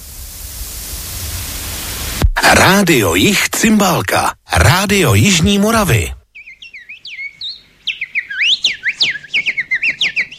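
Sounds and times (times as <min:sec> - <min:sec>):
speech: 0:02.5 - 0:06.2
blackbird singing fluting whistled phrases: 0:06.3 - 0:10.3.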